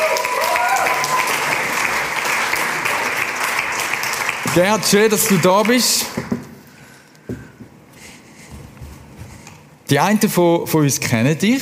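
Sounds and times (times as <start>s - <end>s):
live audience clapping: 0.0s - 6.4s
speech: 4.5s - 6.3s, 9.9s - 11.6s.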